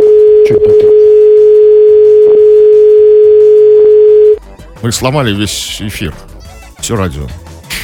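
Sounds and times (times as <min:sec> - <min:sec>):
telephone dial tone: 0:00.0 - 0:04.4
speech: 0:04.8 - 0:07.4.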